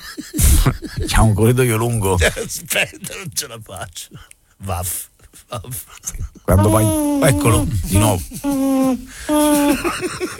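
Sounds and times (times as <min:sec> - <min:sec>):
laughter: 0:00.0 - 0:03.3, 0:06.5 - 0:10.3
speech: 0:00.7 - 0:10.3
little owl hooting: 0:06.5 - 0:09.7.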